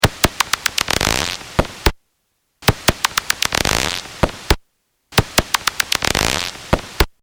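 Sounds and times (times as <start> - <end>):
noctule bat feeding buzz on a heterodyne detector: 0.0 - 1.6, 2.6 - 4.6, 5.2 - 7.1.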